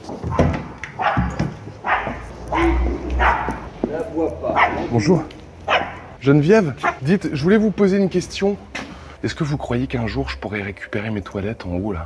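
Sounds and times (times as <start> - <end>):
dog barking: 0.3 - 4.9, 5.7 - 6.2, 6.8 - 7.1
speech: 4.9 - 5.3, 6.3 - 12.0.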